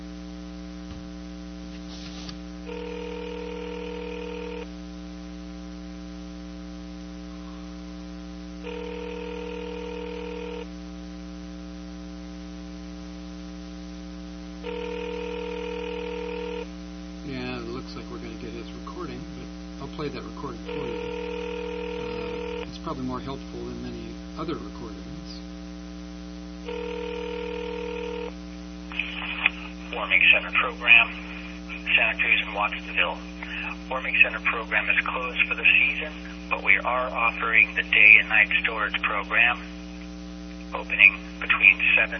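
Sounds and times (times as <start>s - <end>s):
constant electrical hum: 0.0s - 42.1s
recorded message for a warming center program answering on the line: 2.7s - 4.6s, 8.6s - 10.7s, 14.6s - 16.6s, 17.2s - 25.5s, 26.7s - 40.0s, 40.6s - 42.1s
outgoing phone call ringing: 2.7s - 4.7s, 8.6s - 10.7s, 14.6s - 16.7s, 20.4s - 22.8s, 26.7s - 28.4s, 29.9s - 39.6s
speech: 23.0s - 23.8s, 24.4s - 25.0s, 30.1s - 31.2s, 32.0s - 33.3s, 33.9s - 39.8s, 40.7s - 42.1s.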